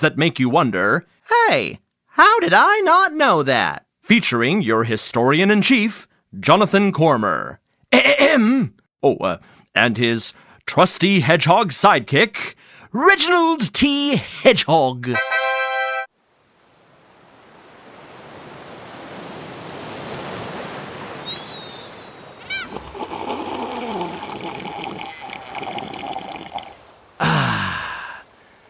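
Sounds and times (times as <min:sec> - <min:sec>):
speech: 0:00.0 - 0:15.4
ocean waves on a beach: 0:16.2 - 0:27.2.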